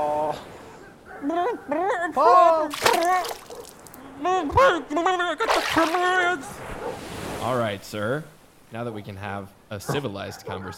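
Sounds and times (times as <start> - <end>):
speech: 1.2 - 3.4, 4.2 - 6.6, 7.4 - 10.7
dog splashing in water: 2.7 - 3.9.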